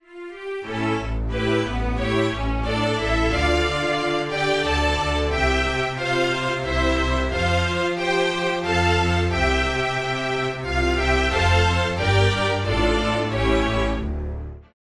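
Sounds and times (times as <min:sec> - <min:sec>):
string orchestra: 0:00.0 - 0:14.7.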